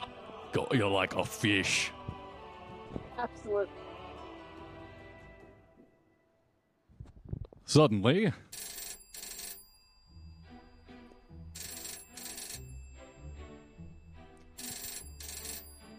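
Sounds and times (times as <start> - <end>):
speech: 0.6 - 2.0, 3.2 - 3.8, 7.7 - 8.6
telephone ringing in a classic double-ring pattern: 8.5 - 15.9.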